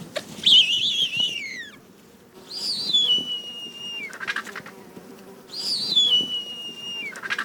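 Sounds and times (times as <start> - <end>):
bearded vulture whistling calls: 0.4 - 1.8, 2.4 - 4.7, 5.5 - 7.4.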